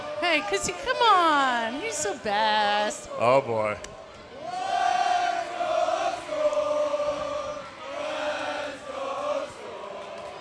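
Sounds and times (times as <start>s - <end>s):
speech: 0.3s - 4.0s
group of voices chanting a team chant at a parade: 4.3s - 10.3s.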